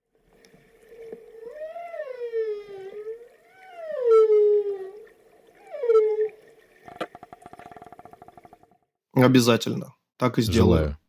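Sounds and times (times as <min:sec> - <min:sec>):
whale moaning calls: 0:00.8 - 0:08.4
speech: 0:09.2 - 0:11.0.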